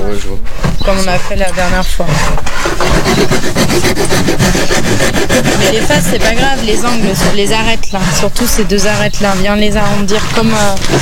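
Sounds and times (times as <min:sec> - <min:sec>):
speech: 0:00.1 - 0:11.0
hand file and rasp rasping a piece of wood: 0:00.4 - 0:11.0.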